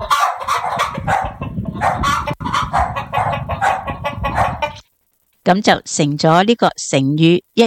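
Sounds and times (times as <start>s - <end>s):
dogs barking: 0.0s - 4.8s
chickens clucking and squawking: 0.0s - 4.9s
speech: 5.5s - 7.6s.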